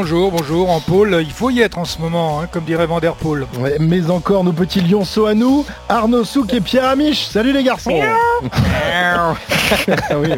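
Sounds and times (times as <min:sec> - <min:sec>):
speech: 0:00.0 - 0:10.3
person imitating a small cat's meow: 0:07.9 - 0:08.5
laughter: 0:07.9 - 0:10.3.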